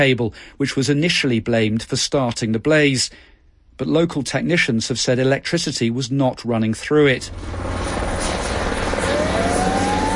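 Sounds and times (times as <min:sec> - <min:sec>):
speech: 0:00.0 - 0:08.0
helicopter rotor chopping while dropping water on a wildfire in Andalusia: 0:07.2 - 0:10.1
thin helicopter whine rising in pitch: 0:07.3 - 0:10.1.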